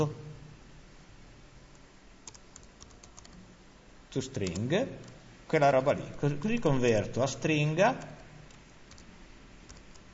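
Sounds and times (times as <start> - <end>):
speech: 0.0 - 0.2, 4.1 - 8.2
low steady hum: 0.0 - 10.1
typing code on a computer keyboard: 2.2 - 3.4, 8.0 - 9.1.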